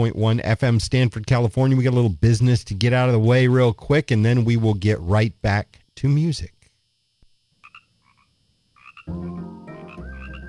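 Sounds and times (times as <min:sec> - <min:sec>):
speech: 0:00.0 - 0:06.6, 0:09.1 - 0:09.6
chorus of frogs croaking: 0:07.5 - 0:10.4.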